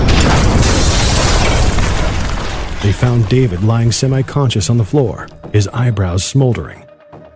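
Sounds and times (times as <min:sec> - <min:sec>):
loud deep explosion booming and rumbling: 0:00.0 - 0:05.6
speech: 0:02.8 - 0:06.8.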